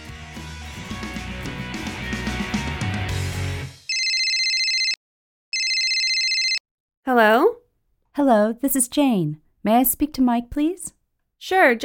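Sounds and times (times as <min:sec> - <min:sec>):
busy musical passage: 0:00.0 - 0:03.9
electronic telephone ringing: 0:03.9 - 0:06.6
speech: 0:07.1 - 0:07.6, 0:08.2 - 0:11.8.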